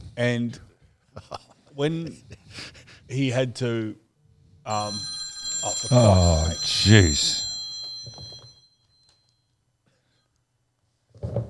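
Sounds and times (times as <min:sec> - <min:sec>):
speech: 0:00.2 - 0:04.0, 0:04.7 - 0:05.1, 0:05.8 - 0:07.4
short electronic phone alert chime: 0:04.7 - 0:08.6.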